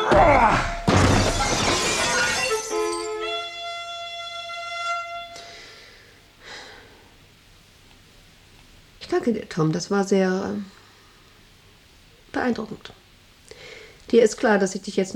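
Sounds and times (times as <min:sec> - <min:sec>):
window glass shattering from a desk thrown through it: 0:00.1 - 0:03.4
glass shards tinkling down: 0:01.0 - 0:03.5
speech: 0:09.3 - 0:10.8, 0:12.4 - 0:13.0, 0:14.1 - 0:15.1.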